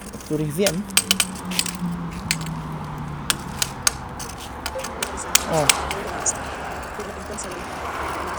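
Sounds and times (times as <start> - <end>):
traffic near a bus or tram depot: 0.0 - 8.3
speech: 0.3 - 1.9, 5.5 - 6.5, 7.3 - 8.3.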